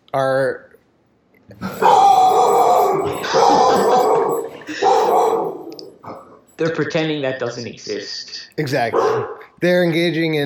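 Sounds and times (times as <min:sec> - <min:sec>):
speech: 0:00.1 - 0:00.7, 0:01.5 - 0:01.9, 0:06.6 - 0:10.4
dog barking: 0:01.7 - 0:06.2, 0:08.9 - 0:09.5.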